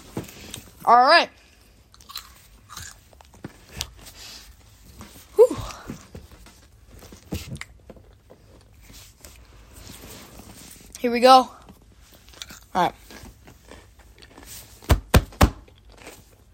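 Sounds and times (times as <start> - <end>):
speech: 0.8 - 1.4, 11.0 - 11.6, 12.8 - 13.0
crunching and chewing a crisp snack: 1.4 - 4.4, 12.1 - 14.9, 15.6 - 16.5.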